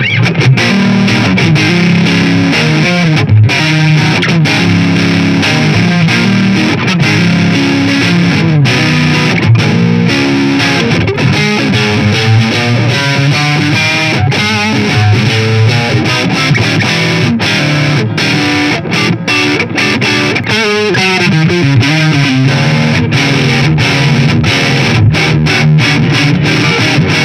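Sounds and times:
distorted electric guitar on neck pickup playing chords and runs: 0:00.0 - 0:27.2.

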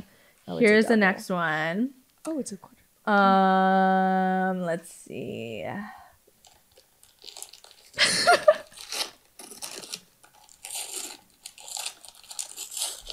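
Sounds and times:
speech: 0:00.5 - 0:06.0
wrapping paper tearing as presents are unwrapped: 0:06.4 - 0:13.1.

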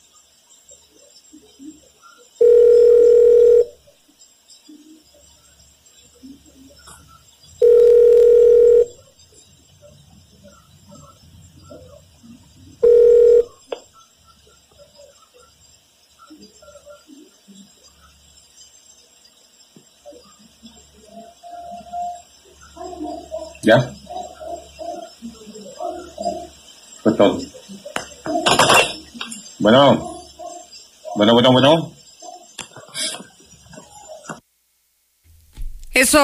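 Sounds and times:
ringback tone of an outgoing telephone call: 0:02.4 - 0:03.8, 0:07.6 - 0:09.0, 0:12.8 - 0:13.6
speech: 0:23.7 - 0:24.0, 0:27.2 - 0:27.5, 0:29.6 - 0:30.1, 0:31.2 - 0:32.0.

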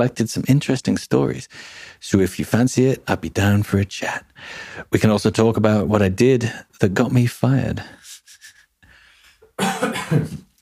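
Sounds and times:
speech: 0:00.0 - 0:08.0
person coughing: 0:09.6 - 0:10.5.

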